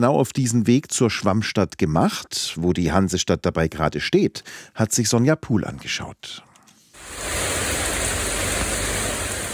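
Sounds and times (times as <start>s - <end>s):
speech: 0.0s - 6.5s
heavy rain pouring during a summer thunderstorm: 7.0s - 9.5s.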